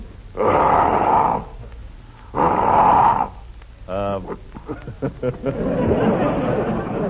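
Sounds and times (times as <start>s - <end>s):
person vocally imitating a lion's roar with breathy growls: 0.4s - 1.7s, 2.3s - 3.4s
laughter: 4.2s - 7.0s.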